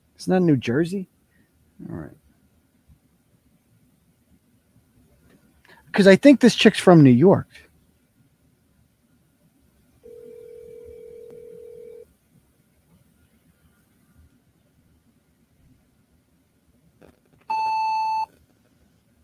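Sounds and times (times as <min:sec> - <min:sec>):
speech: 0:00.2 - 0:01.1, 0:01.8 - 0:02.2, 0:06.0 - 0:07.6
low held telephone voicemail tone: 0:10.0 - 0:12.1, 0:17.5 - 0:18.3
short high telephone voicemail beep: 0:17.5 - 0:18.3.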